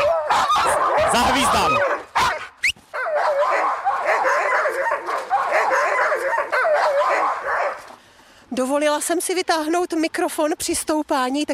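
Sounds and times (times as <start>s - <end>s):
pack of sled dogs barking and yipping excitedly before the start: 0.0s - 8.0s
speech: 1.1s - 1.9s, 8.6s - 11.5s.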